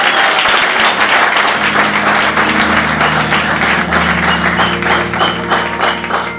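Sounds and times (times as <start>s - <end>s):
crowd applauding: 0.0s - 6.3s
faint sustained musical tone: 1.5s - 6.3s.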